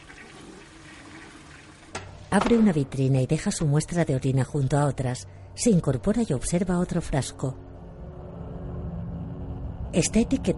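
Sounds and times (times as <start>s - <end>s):
toilet flushing in a bathroom: 0.0s - 2.0s
speech: 2.3s - 7.6s, 10.0s - 10.5s.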